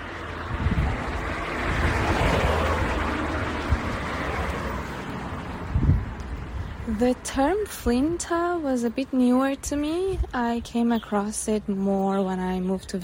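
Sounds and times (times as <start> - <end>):
outdoor wind rushing across the microphone: 0.0 - 8.4, 9.6 - 10.8
speech: 6.9 - 13.0.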